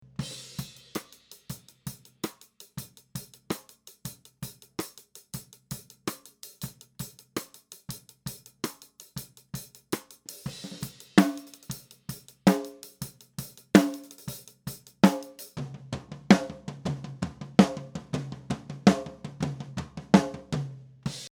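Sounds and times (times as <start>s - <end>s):
snare drum: 0.2s - 21.2s.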